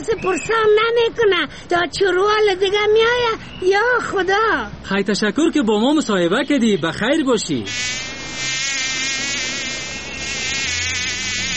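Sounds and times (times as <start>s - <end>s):
speech: 0.0s - 8.4s
fly buzzing: 7.7s - 11.5s.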